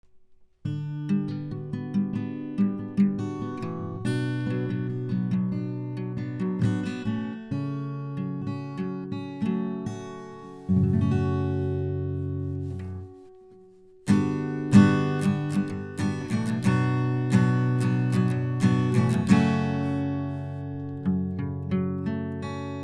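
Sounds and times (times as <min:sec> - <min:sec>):
acoustic guitar recorded through a Focusrite Scarlett Solo 4th Gen: 0:00.0 - 0:22.8.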